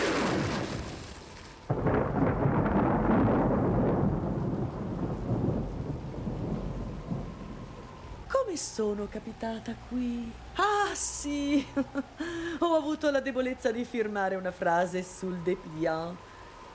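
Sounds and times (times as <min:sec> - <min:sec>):
deep rolling thunder crack: 0:00.0 - 0:07.8
steady rain hiss: 0:00.0 - 0:16.7
speech: 0:08.5 - 0:16.3.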